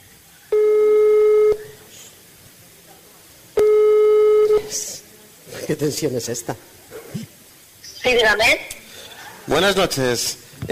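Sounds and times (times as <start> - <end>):
faint noise: 0.0 - 10.7
telephone line tone beeps on a recorded call: 0.5 - 1.7, 3.6 - 4.7
speech: 5.7 - 6.8, 8.1 - 8.7, 9.5 - 10.7.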